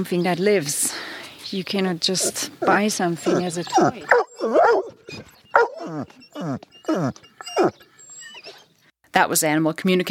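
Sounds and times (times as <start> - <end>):
speech: 0.0 - 5.3, 5.9 - 7.8, 9.2 - 10.0
dog barking: 3.3 - 5.9.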